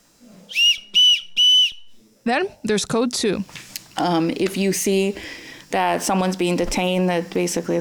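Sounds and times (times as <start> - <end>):
whistle blasts as a warning signal for spotting immigration agents: 0.5 - 2.0
speech: 2.3 - 7.7.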